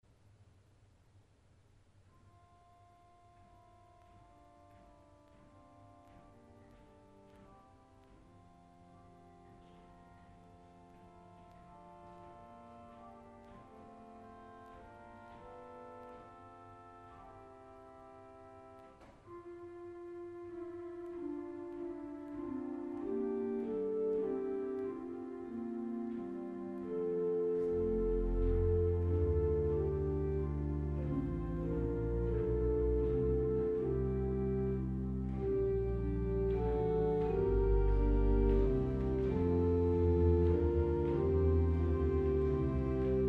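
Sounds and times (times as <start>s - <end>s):
Vox Coelestis string organ stop: 17.7s - 43.2s.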